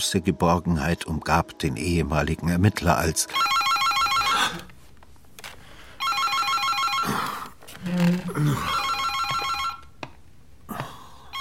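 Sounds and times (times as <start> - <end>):
speech: 0.0 - 3.6, 7.8 - 8.8
telephone ringing with trilling buzzing bell tones: 3.2 - 4.7, 5.9 - 10.0.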